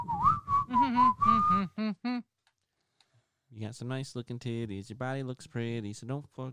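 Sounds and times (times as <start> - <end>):
person whistling a tune: 0.0 - 1.9
speech: 3.6 - 6.5.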